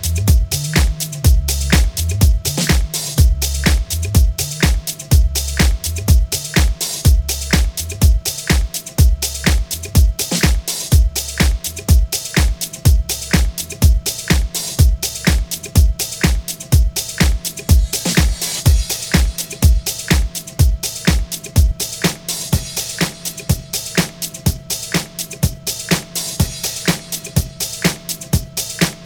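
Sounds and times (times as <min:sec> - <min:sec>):
deep pulsing bass notes: 0:00.0 - 0:08.3, 0:09.0 - 0:10.2, 0:12.9 - 0:14.0
bright hiss: 0:00.0 - 0:29.0
house track with a fast regular beat: 0:00.0 - 0:29.0.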